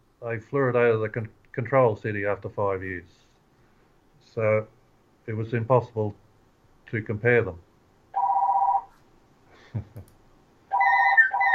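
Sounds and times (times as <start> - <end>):
speech: 0.2 - 3.2, 4.4 - 6.2, 6.9 - 7.6, 9.7 - 10.1
phone ringtone: 8.2 - 8.9, 10.7 - 11.5.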